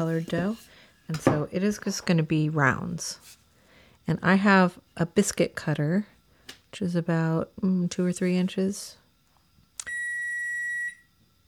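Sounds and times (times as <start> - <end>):
speech: 0.0 - 3.4, 4.0 - 6.1, 6.7 - 9.0
oven timer long electronic beep signalling oven preheated: 9.8 - 11.0.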